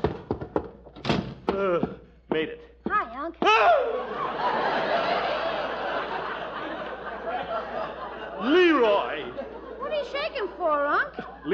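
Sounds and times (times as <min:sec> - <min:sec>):
stuck front door shoved and jolted with dull thunks: 0:00.0 - 0:01.6
speech: 0:01.6 - 0:05.6, 0:07.4 - 0:11.5
laughter: 0:03.6 - 0:11.5.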